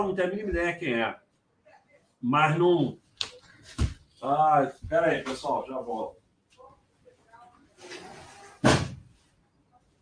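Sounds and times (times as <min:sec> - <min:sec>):
speech: 0:00.0 - 0:01.2, 0:02.2 - 0:03.0, 0:03.7 - 0:06.2
faint shuffling: 0:03.0 - 0:09.4
door swinging and slamming shut: 0:08.6 - 0:09.1.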